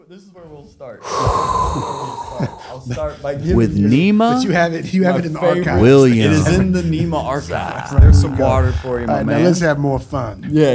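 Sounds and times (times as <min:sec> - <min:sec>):
speech: 0:00.1 - 0:10.7
sharp loud hot breath inhale: 0:01.0 - 0:02.8.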